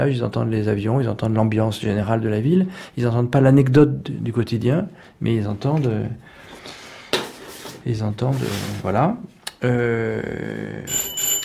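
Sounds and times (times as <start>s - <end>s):
speech: 0.0s - 6.8s, 7.8s - 11.2s
bright electronic two-part doorbell chime in a Paris apartment: 10.9s - 11.4s.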